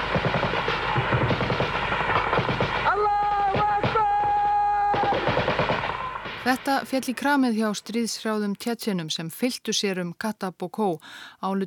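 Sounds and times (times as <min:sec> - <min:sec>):
heavier booming explosions in combat: 0:00.0 - 0:07.4
rapid gunfire from a filmed militant attack on Russian soldiers: 0:00.0 - 0:07.4
speech: 0:06.5 - 0:11.6.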